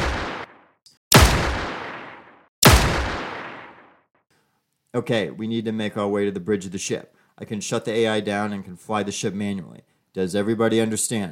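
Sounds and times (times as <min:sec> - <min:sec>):
gunfire from pistols and rifles: 0:00.0 - 0:04.0
speech: 0:05.0 - 0:11.3.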